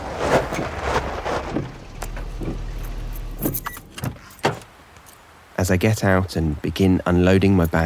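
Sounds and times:
car tires crunching on a gravel driveway: 0:00.0 - 0:05.2
low car engine rumble: 0:00.0 - 0:05.4
sharp rattles and clicks of a car stopping: 0:00.3 - 0:05.2
speech: 0:05.6 - 0:07.8.

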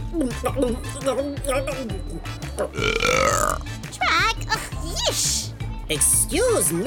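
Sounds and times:
speech: 0:00.2 - 0:03.8, 0:04.5 - 0:06.8
loud croaking burp after fizzy drink: 0:02.7 - 0:03.7.

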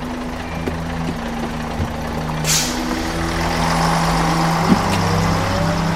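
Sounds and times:
bus engine idling at a bus stop: 0:00.0 - 0:05.9
pneumatic hiss of bus doors closing: 0:02.5 - 0:02.9.

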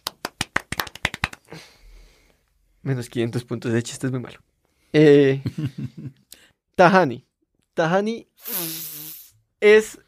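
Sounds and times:
applause after a call to clap for an actress: 0:00.0 - 0:01.5
speech: 0:02.8 - 0:06.2, 0:06.8 - 0:08.8, 0:09.6 - 0:10.0.

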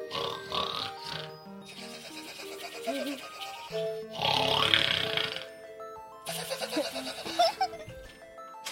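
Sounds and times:
man snoring loudly with rough snorting breaths: 0:00.1 - 0:01.4, 0:04.0 - 0:05.6
laughter: 0:06.3 - 0:08.0.

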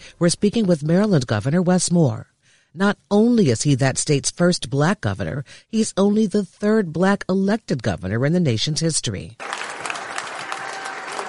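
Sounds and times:
speech: 0:00.2 - 0:09.6
large crowd applauding at a governor's inauguration: 0:09.4 - 0:11.2.

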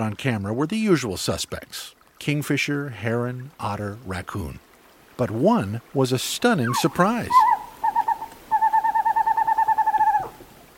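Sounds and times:
speech: 0:00.0 - 0:07.5
western screech owl hooting and tooting: 0:06.6 - 0:10.4.

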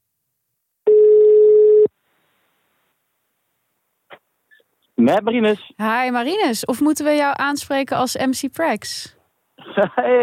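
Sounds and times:
electronic telephone ringback tone while calling someone: 0:00.9 - 0:01.9
speech: 0:05.0 - 0:10.2
laughter: 0:09.6 - 0:10.2.

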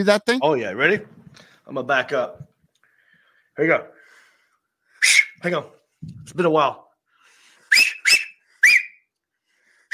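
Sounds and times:
speech: 0:00.0 - 0:02.4, 0:03.6 - 0:04.0, 0:05.4 - 0:06.8
loud piercing two-finger whistles: 0:05.0 - 0:05.4, 0:07.7 - 0:09.1.

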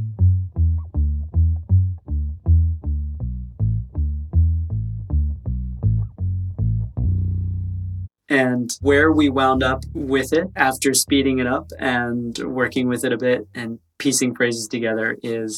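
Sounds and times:
slow bass line played on a guitar: 0:00.0 - 0:13.8
speech: 0:08.3 - 0:15.5.

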